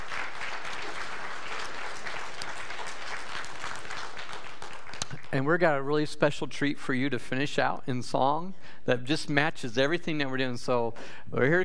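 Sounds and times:
large group applauding in a room: 0:00.0 - 0:05.4
speech: 0:05.3 - 0:11.6.

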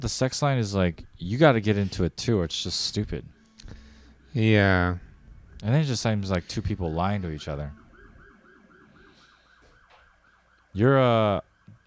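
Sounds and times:
speech: 0:00.0 - 0:03.4, 0:04.4 - 0:05.0, 0:05.6 - 0:07.8, 0:10.8 - 0:11.5
emergency vehicle siren outside: 0:03.3 - 0:11.8.

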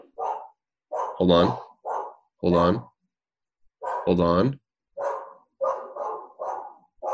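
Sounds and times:
dog barking loudly: 0:00.0 - 0:02.3, 0:03.8 - 0:04.2, 0:05.0 - 0:07.1
speech: 0:01.2 - 0:01.6, 0:02.4 - 0:02.9, 0:04.0 - 0:04.6.

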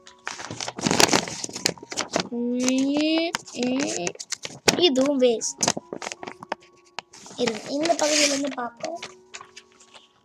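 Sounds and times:
waste paper crumpled and handled to make a paper bird: 0:00.0 - 0:10.2
speech: 0:02.4 - 0:02.8, 0:04.8 - 0:05.8, 0:07.4 - 0:09.1.

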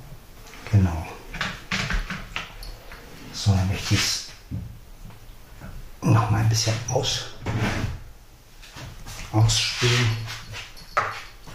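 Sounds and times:
speech: 0:00.7 - 0:01.1, 0:03.4 - 0:04.7, 0:06.2 - 0:07.9, 0:09.3 - 0:10.4
drawer sliding and bumping shut: 0:07.4 - 0:08.0.

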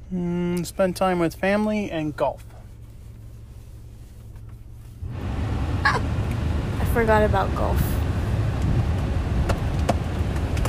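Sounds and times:
speech: 0:00.1 - 0:02.5, 0:07.0 - 0:07.9
air conditioner blowing: 0:00.4 - 0:10.6.

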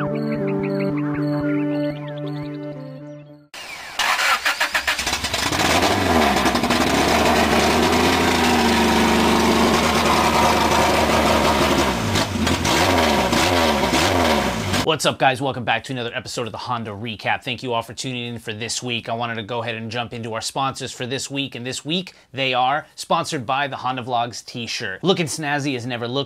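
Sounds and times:
musical intro: 0:00.0 - 0:03.6
port fuel injected engine revving on a dyno: 0:03.6 - 0:14.9
speech: 0:14.9 - 0:26.2.

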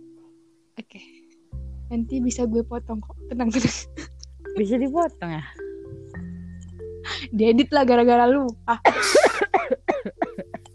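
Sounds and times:
speech: 0:00.8 - 0:01.2, 0:01.9 - 0:05.6, 0:07.3 - 0:09.2
person coughing harshly and hoarsely: 0:08.8 - 0:10.6.

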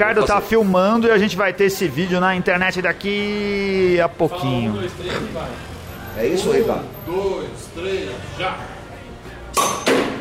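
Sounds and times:
speech: 0:00.0 - 0:08.8
sharp strikes against a glass bottle of dark beer: 0:09.6 - 0:10.1.

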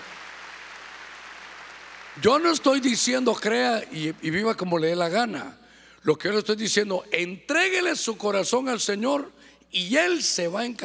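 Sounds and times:
crowd at a church sermon clapping: 0:00.0 - 0:04.6
speech: 0:02.2 - 0:10.8.

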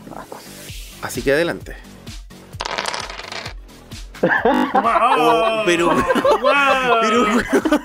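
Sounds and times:
speech: 0:01.0 - 0:01.9, 0:04.2 - 0:07.8
several dice rattling across a hard surface: 0:02.6 - 0:03.6
laughter: 0:04.2 - 0:07.8.

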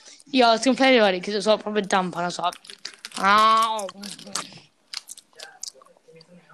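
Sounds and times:
chewing milk chocolate raisins: 0:00.1 - 0:06.5
speech: 0:00.3 - 0:04.6
moist mouth sounds: 0:01.9 - 0:06.5.

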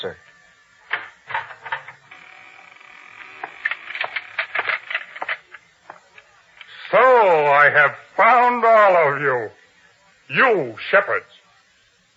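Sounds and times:
speech: 0:00.0 - 0:00.2, 0:06.9 - 0:09.6, 0:10.3 - 0:11.4
door creaking: 0:00.9 - 0:05.3.

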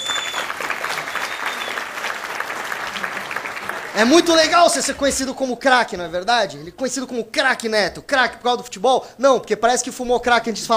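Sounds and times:
TV studio crowd clapping for a guest: 0:00.0 - 0:05.0
speech: 0:04.0 - 0:10.7.

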